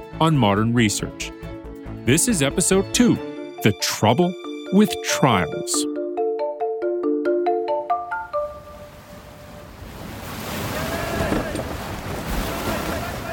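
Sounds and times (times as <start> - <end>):
speech: 0.2 - 1.4, 2.0 - 5.9
short bright melodic jingle: 2.1 - 9.0
steady wind on a sailing ship: 6.6 - 13.3
rushing seawater washing down the side deck and draining off the stern: 8.8 - 13.3
wave breaking over the starboard rail of a sailing ship: 9.1 - 13.3.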